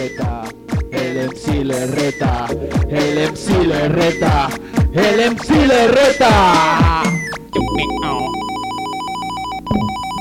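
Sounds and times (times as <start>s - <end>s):
speech: 0.0s - 0.6s, 1.2s - 8.4s
electronic phone ringtone for an incoming call: 7.2s - 10.2s.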